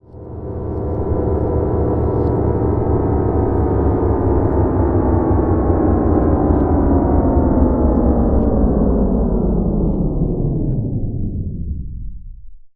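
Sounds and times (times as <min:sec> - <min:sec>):
reversed piano effect pitched down: 0:00.0 - 0:12.4.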